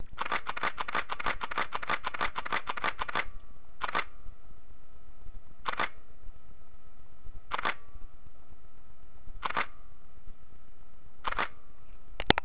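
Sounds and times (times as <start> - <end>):
Samsung GX-10S camera raw burst shooting: 0.2 - 4.2, 5.6 - 6.0, 7.5 - 7.9, 9.4 - 9.8, 11.2 - 11.6.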